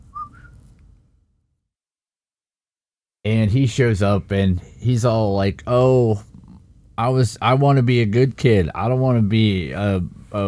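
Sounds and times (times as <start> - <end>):
woman whistling a two-note call: 0.0 - 0.6
speech: 3.2 - 6.3, 7.0 - 10.4.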